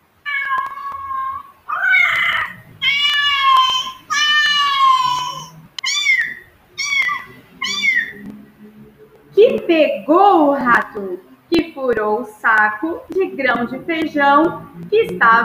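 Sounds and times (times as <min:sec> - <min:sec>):
cat meowing: 0:00.2 - 0:08.2
speech: 0:10.1 - 0:15.4.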